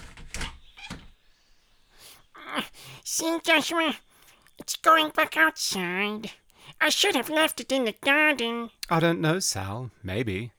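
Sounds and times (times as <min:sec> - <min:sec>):
door latch and handle clunks: 0:00.0 - 0:01.2
speech: 0:03.1 - 0:10.5.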